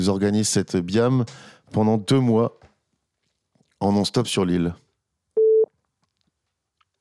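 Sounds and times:
speech: 0:00.0 - 0:02.6, 0:03.8 - 0:04.8
telephone ringing tone: 0:05.4 - 0:05.7.

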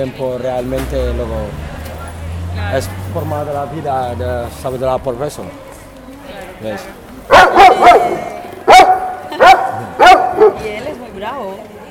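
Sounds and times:
speech: 0:00.0 - 0:01.7, 0:02.6 - 0:05.7, 0:06.6 - 0:07.8, 0:10.6 - 0:11.8
six-year-old stray dog from Bilbao barking: 0:07.3 - 0:10.8.

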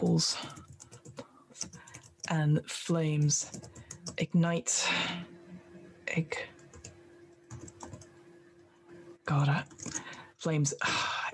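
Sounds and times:
speech: 0:00.0 - 0:00.6, 0:02.3 - 0:05.3, 0:06.1 - 0:06.5, 0:09.3 - 0:11.3
typing on a computer keyboard: 0:00.5 - 0:02.3, 0:03.4 - 0:04.2, 0:06.6 - 0:08.1, 0:09.7 - 0:10.1.

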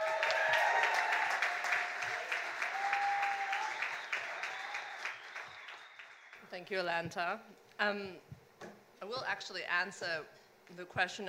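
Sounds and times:
audience applause at a science comedy debate event: 0:00.0 - 0:06.4
speech: 0:06.6 - 0:11.2.

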